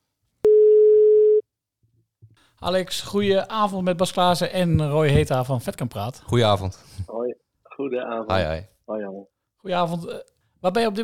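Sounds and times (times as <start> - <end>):
telephone call tone beep: 0.5 - 1.4
speech: 2.6 - 11.0.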